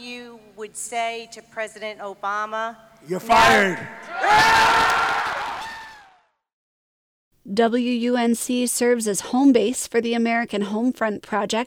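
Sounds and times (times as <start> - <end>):
speech: 0.6 - 5.1, 7.4 - 11.6
large rally crowd cheering and hollering: 3.3 - 6.3.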